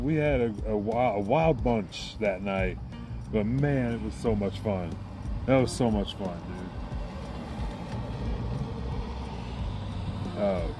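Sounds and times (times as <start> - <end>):
speech: 0.0 - 6.8, 10.4 - 10.7
car rumbling past with engine and road noise: 2.6 - 10.7.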